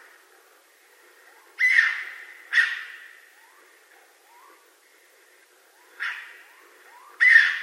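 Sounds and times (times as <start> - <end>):
raccoon voicing harsh grating screams: 1.6 - 2.9, 7.2 - 7.6.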